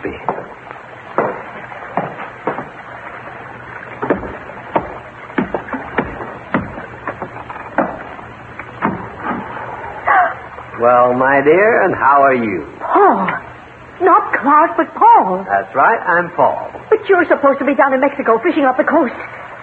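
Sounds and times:
low steady noise: 0:00.0 - 0:19.6
small boat bumping against a hull while tying up alongside: 0:00.1 - 0:03.2, 0:03.8 - 0:09.6
speech: 0:10.8 - 0:13.4, 0:14.0 - 0:19.4.

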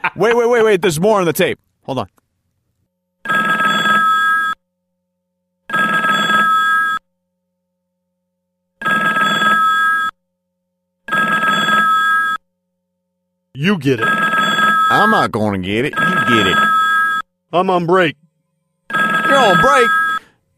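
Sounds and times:
speech: 0:00.2 - 0:02.2, 0:13.6 - 0:14.3, 0:15.0 - 0:16.8, 0:17.5 - 0:18.2, 0:18.9 - 0:20.0
telephone ringing: 0:03.2 - 0:04.6, 0:05.6 - 0:07.1, 0:08.8 - 0:10.2, 0:11.0 - 0:12.4, 0:13.8 - 0:17.3, 0:18.8 - 0:20.5.

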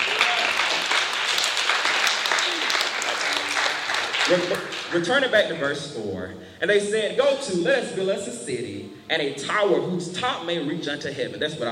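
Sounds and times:
crowd clapping: 0:00.0 - 0:05.1
speech: 0:04.3 - 0:11.6.

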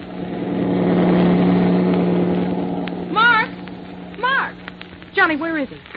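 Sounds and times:
heavy truck speeding along a road at night: 0:00.0 - 0:05.1
speech: 0:05.3 - 0:05.9.

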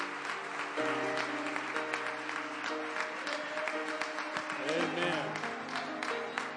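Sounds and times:
audience applauding: 0:00.0 - 0:06.5.

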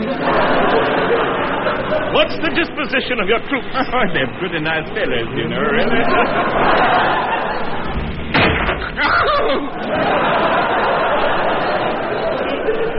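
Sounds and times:
murmuring voices: 0:00.0 - 0:08.1, 0:08.8 - 0:12.9
laughter: 0:00.0 - 0:12.9
speech: 0:02.2 - 0:07.4, 0:09.0 - 0:10.6
heavy thud of a blow to the head: 0:08.3 - 0:08.9.

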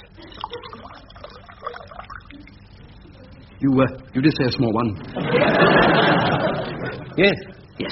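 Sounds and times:
beer pouring into a glass: 0:00.3 - 0:02.4
speech: 0:03.6 - 0:06.5, 0:07.2 - 0:07.9
laughter: 0:05.0 - 0:07.2.

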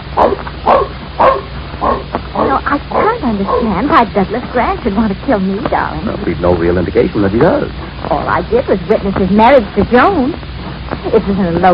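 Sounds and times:
faint low hum: 0:00.0 - 0:11.7
dog barking: 0:00.2 - 0:03.8
speech: 0:03.3 - 0:11.7.

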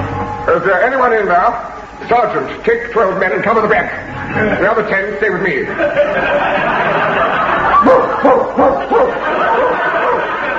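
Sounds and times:
dense noisy hubbub: 0:00.0 - 0:10.5
speech: 0:00.5 - 0:08.0
laughter: 0:05.7 - 0:10.5
dog barking: 0:07.8 - 0:10.3.

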